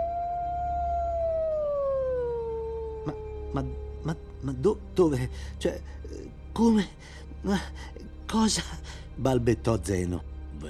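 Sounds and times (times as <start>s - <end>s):
werewolf howl: 0.0s - 4.6s
speech: 3.1s - 10.6s.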